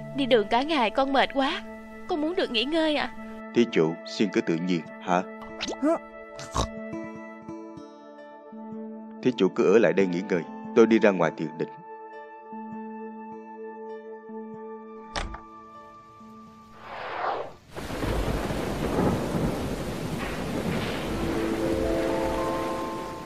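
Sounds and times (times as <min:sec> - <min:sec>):
speech: 0:00.2 - 0:06.8, 0:09.2 - 0:11.8
heavy rain: 0:16.6 - 0:23.2
sharp crack of thunder: 0:16.8 - 0:23.2.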